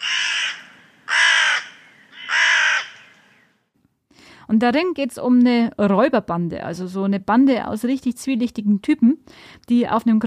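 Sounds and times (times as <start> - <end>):
raven cawing: 0.0 - 3.6
speech: 4.5 - 10.2.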